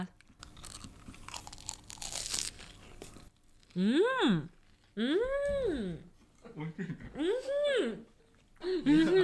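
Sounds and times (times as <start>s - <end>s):
crunchy chewing of a coconut-flavoured sweet potato snack: 0.2s - 3.8s
speech: 3.8s - 9.2s.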